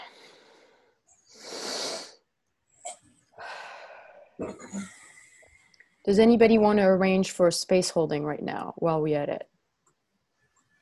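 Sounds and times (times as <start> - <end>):
group of people taking a deep breath together: 0.0 - 2.2, 3.4 - 4.3
speech: 4.4 - 4.9, 6.1 - 9.5.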